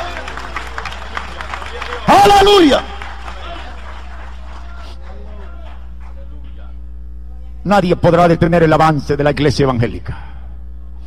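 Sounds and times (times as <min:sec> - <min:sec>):
audience applauding: 0:00.0 - 0:06.4
speech: 0:02.1 - 0:02.9, 0:07.7 - 0:10.3.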